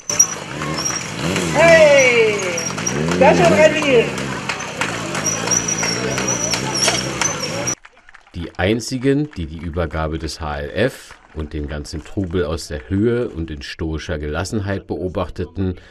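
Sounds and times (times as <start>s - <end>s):
motorcycle engine revving during stunt show: 0.0s - 7.8s
noisy outdoor crowd shouting and chatting: 0.0s - 8.4s
speech: 3.2s - 4.2s, 8.6s - 15.8s.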